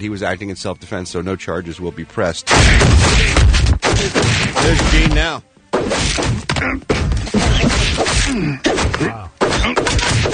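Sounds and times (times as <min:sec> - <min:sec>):
speech: 0:00.0 - 0:07.0, 0:08.3 - 0:10.0
loud forceful slapping and thwacking hits: 0:02.5 - 0:10.3.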